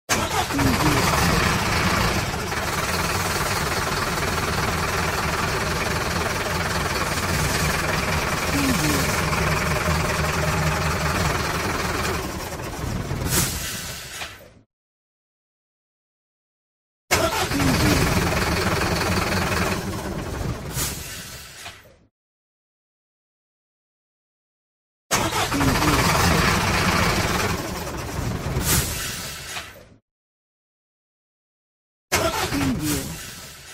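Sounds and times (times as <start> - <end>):
old truck engine starting, running and stopping: 0.1 - 14.6, 17.1 - 21.9, 25.1 - 29.8, 32.1 - 33.7.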